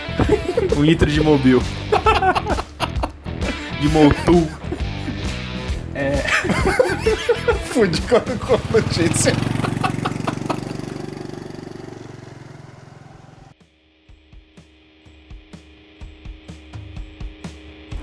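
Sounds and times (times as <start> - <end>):
laughter: 0.0 - 11.0
speech: 0.3 - 2.6, 3.8 - 4.6, 6.0 - 9.6
motorcycle engine running: 6.7 - 13.5.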